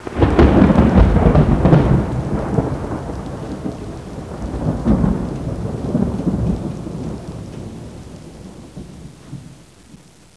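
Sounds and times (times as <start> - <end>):
thunder clap: 0.0 - 9.7.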